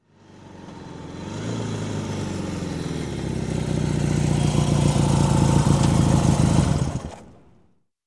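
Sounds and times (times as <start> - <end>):
motorcycle stopping by: 0.2 - 7.6.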